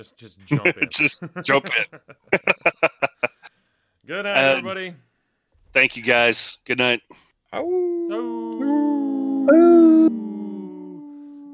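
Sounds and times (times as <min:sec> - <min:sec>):
speech: 0:00.0 - 0:02.8, 0:04.1 - 0:05.1, 0:05.8 - 0:08.4, 0:09.5 - 0:10.0
laughter: 0:00.5 - 0:03.5
several wolves howling in a chorus: 0:07.6 - 0:11.5.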